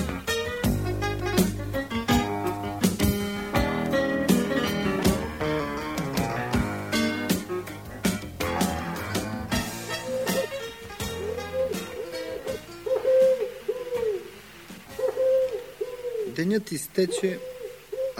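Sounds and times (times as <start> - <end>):
music with sharp percussive hits: 0.0 - 13.4
snow-white collared dove cooing: 0.0 - 18.1
speech: 16.6 - 17.5.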